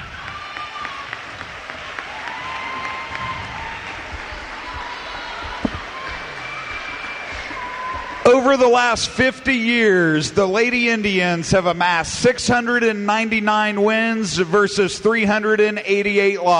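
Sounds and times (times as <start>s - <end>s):
people shouting: 0.0s - 9.4s
large crowd applauding in a gymnasium: 0.0s - 10.2s
whistles: 2.2s - 8.3s
speech: 8.3s - 16.5s.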